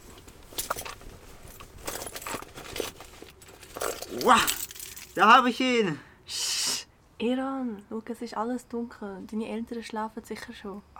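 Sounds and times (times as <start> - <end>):
keys jangling while being rummaged through: 1.6 - 5.2
speech: 4.2 - 4.6, 5.2 - 6.1, 7.2 - 10.9.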